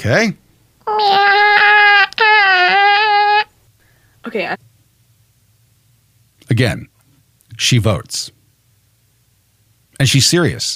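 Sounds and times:
speech: 0.0s - 1.6s, 4.3s - 4.7s, 6.5s - 6.9s, 7.6s - 8.4s, 10.0s - 10.7s
person imitating a whiny cat meow: 0.8s - 3.5s.

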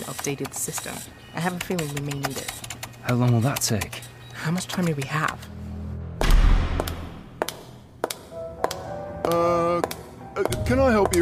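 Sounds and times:
speech: 0.2s - 5.6s, 9.3s - 11.2s
loud sharp gunshot: 6.2s - 7.3s.

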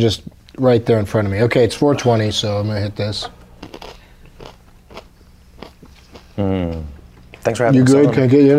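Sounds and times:
speech: 0.0s - 3.8s, 6.4s - 8.5s
crunching corn nuts: 3.6s - 6.8s.

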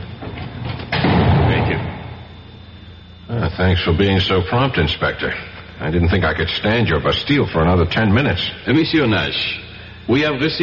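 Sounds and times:
steady low hum: 0.0s - 10.6s
heavy prison cell door slamming shut: 0.2s - 2.2s
speech: 3.6s - 10.6s.

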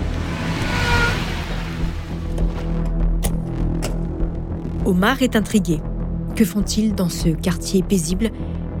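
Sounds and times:
gendarmerie car engines rumbling in an apartment building's parking lot: 0.0s - 4.5s
tire and road noise: 0.0s - 4.5s
speech: 4.9s - 8.6s.

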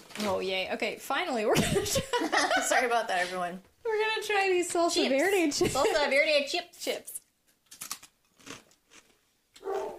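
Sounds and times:
speech: 0.2s - 7.2s
crisp crunching bites: 7.7s - 9.2s
dog giving a short whining bark: 9.6s - 9.9s.

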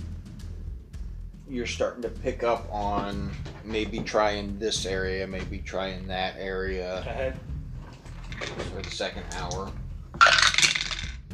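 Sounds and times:
speech: 1.5s - 7.5s, 8.4s - 9.8s
dice rolling on a hard tabletop: 10.2s - 11.2s.

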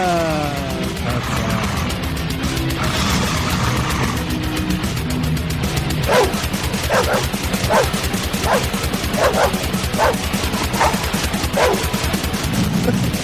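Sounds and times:
death metal music with drums and distorted guitars: 0.2s - 13.2s
two pit bull terriers barking: 5.9s - 13.2s.

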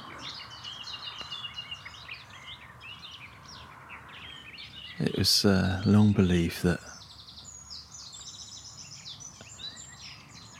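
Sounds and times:
nightingale singing from dense undergrowth: 0.0s - 10.5s
steady hiss: 0.0s - 10.5s
speech: 5.0s - 6.9s.

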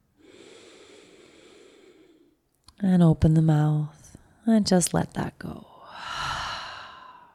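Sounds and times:
deep breath in: 0.2s - 2.4s, 5.8s - 7.3s
speech: 2.8s - 6.1s.

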